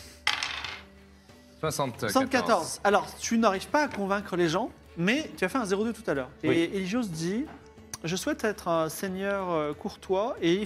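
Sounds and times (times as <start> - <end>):
dice clattering onto a hard table: 0.2 - 0.9
speech: 1.6 - 10.6.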